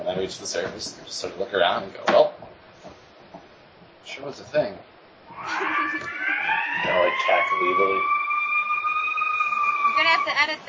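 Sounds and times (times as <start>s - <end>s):
speech: 0.2s - 2.3s, 4.0s - 6.2s, 6.8s - 8.2s, 10.0s - 10.6s
emergency vehicle sirens wailing outside: 5.3s - 10.6s.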